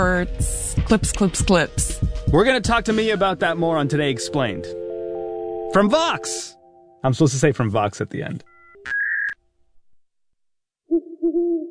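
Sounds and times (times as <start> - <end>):
speech: 0.0 - 4.8, 5.7 - 9.0
owl hooting: 10.9 - 11.7.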